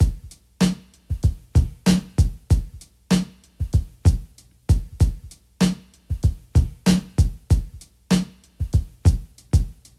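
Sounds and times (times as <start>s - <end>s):
drum loop at 96 bpm: 0.0s - 9.9s.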